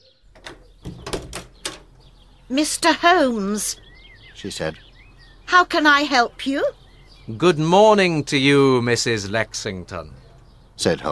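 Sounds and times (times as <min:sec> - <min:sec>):
faint birdlike chirps: 0:00.0 - 0:11.1
house front door opened with clicks and rattling knocks: 0:00.3 - 0:02.1
speech: 0:02.5 - 0:03.8, 0:04.4 - 0:04.8, 0:05.5 - 0:10.2, 0:10.8 - 0:11.1.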